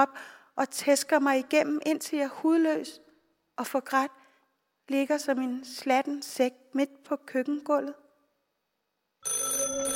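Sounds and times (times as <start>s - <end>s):
speech: 0.0s - 3.0s, 3.6s - 4.2s, 4.9s - 8.0s
telephone bell ringing: 9.2s - 9.9s.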